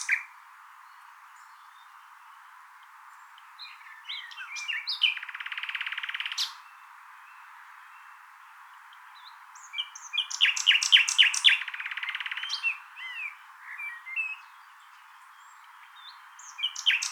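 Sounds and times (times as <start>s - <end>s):
common nightingale Luscinia megarhynchos singing: 0.0s - 0.3s, 3.4s - 8.2s, 8.9s - 17.0s.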